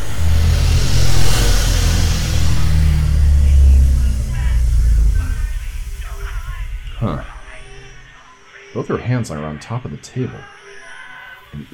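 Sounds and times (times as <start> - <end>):
cab engine rumbling as the cab accelerates and drives slowly: 0.0 - 8.2
speech: 8.8 - 10.6, 11.5 - 11.7.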